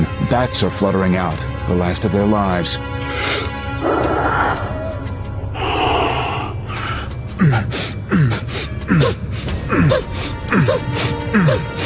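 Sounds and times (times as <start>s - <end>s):
speech: 0.3s - 4.7s
forceful rescue breaths blown out during CPR: 5.6s - 11.8s
strained grunts and puffs during chest compressions: 5.9s - 11.8s.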